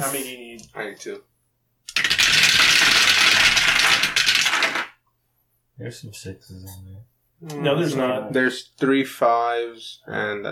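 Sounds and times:
speech: 0.0s - 4.2s, 5.8s - 10.5s
dice rolled during a tabletop board game: 1.9s - 5.0s.

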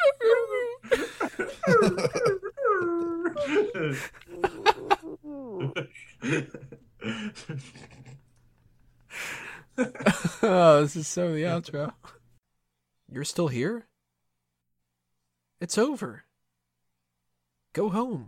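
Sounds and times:
laughter: 0.0s - 8.3s, 9.7s - 10.6s
speech: 1.7s - 2.3s, 10.8s - 12.1s, 13.2s - 13.9s, 15.6s - 16.3s, 17.8s - 18.2s
person imitating a seal with yelps and whines: 2.4s - 5.8s.

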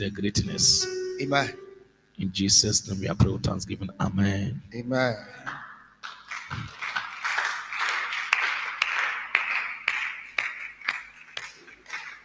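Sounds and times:
speech: 0.0s - 1.6s, 2.2s - 5.6s
audience at a prayer service clapping: 5.4s - 12.2s.

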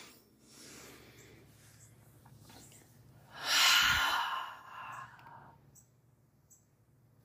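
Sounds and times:
deep breathing in through nose, out through mouth during a relaxation exercise: 0.0s - 1.9s, 2.7s - 5.7s.

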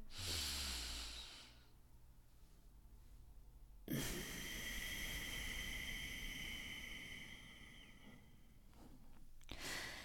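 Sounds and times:
deep slow ocean-wave breathing through a constricted throat: 0.0s - 1.6s, 3.9s - 8.5s.

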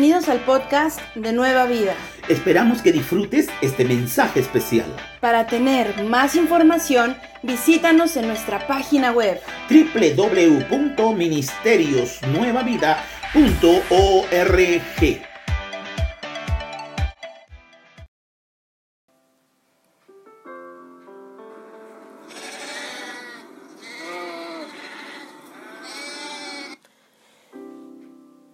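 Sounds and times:
speech: 0.0s - 15.3s
rhythmic pulsing tones: 12.0s - 15.6s
several sheep bleating in a green meadow: 22.1s - 26.8s.

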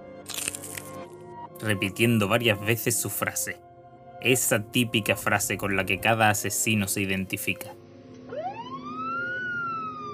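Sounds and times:
speech: 1.6s - 7.8s
police siren wailing: 8.2s - 10.1s.

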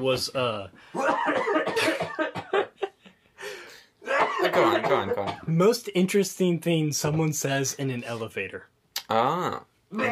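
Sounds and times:
speech: 0.0s - 2.6s, 4.4s - 10.0s
loud coughing in harsh rough bursts: 1.0s - 3.0s, 4.0s - 5.5s.

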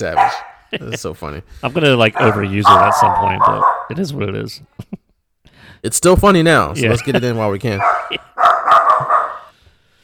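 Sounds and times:
speech: 0.0s - 5.0s, 5.6s - 9.1s
small dog barking: 0.1s - 0.6s, 2.2s - 3.9s, 7.8s - 9.5s.

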